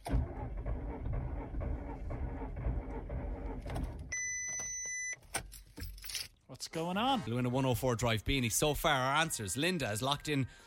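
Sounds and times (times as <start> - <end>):
car engine cranking but failing to start: 0.0 - 4.1
speech: 6.6 - 10.6.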